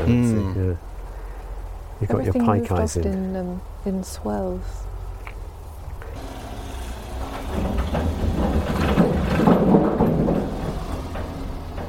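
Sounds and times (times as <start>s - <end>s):
speech: 0.0s - 1.0s, 2.0s - 4.9s
car rumbling across a swing bridge with rattling clatter: 4.5s - 11.8s.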